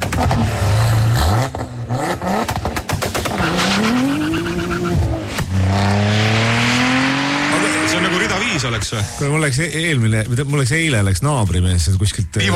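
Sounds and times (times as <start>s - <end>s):
Audi RS4 B5 engine revving hard: 0.0s - 9.3s
speech: 8.9s - 12.5s.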